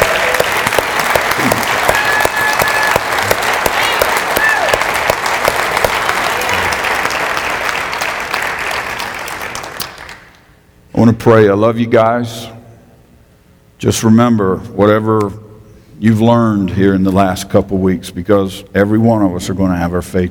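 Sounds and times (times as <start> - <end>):
scattered cheers: 0.0 - 5.1
large crowd clapping: 0.0 - 10.5
speech: 11.0 - 12.5, 13.8 - 15.4, 16.0 - 20.2.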